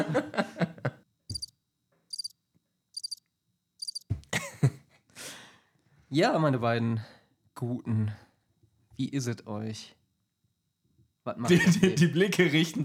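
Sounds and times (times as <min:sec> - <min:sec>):
laughter: 0:00.0 - 0:01.1, 0:04.3 - 0:05.0, 0:11.4 - 0:12.2
high pulsing cricket chirps: 0:01.3 - 0:01.5, 0:02.1 - 0:04.1
speech: 0:06.1 - 0:08.2, 0:09.0 - 0:10.0, 0:11.2 - 0:12.8.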